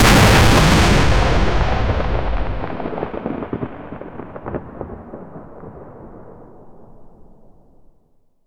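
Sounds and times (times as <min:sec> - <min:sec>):
debris flying everywhere: 0:00.0 - 0:05.0
massive explosion: 0:00.0 - 0:06.0.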